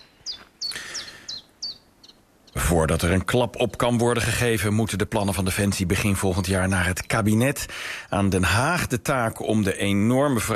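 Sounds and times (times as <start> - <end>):
chiffchaff singing in early spring: 0.0 - 7.6
speech: 2.7 - 10.5.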